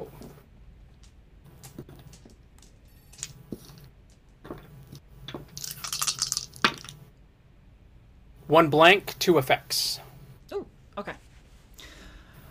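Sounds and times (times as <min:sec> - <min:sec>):
dice rattling and clattering: 0:01.6 - 0:04.2, 0:05.6 - 0:07.0
speech: 0:08.5 - 0:10.0.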